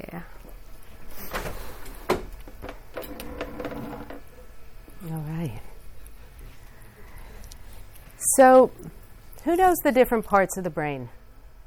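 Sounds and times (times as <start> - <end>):
window being opened: 1.2 - 4.3
speech: 8.4 - 11.2.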